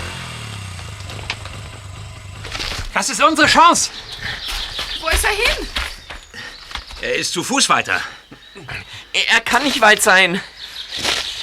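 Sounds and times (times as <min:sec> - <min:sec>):
motorcycle engine idling after a crash on a forest floor: 0:00.0 - 0:05.4
speech: 0:02.9 - 0:04.5, 0:05.1 - 0:05.9, 0:07.0 - 0:11.1.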